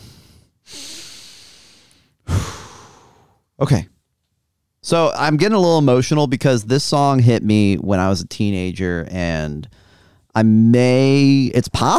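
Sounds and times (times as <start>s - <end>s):
deep breath: 0.0s - 3.4s, 9.7s - 10.3s
speech: 3.6s - 3.9s, 4.8s - 9.8s, 10.4s - 11.9s.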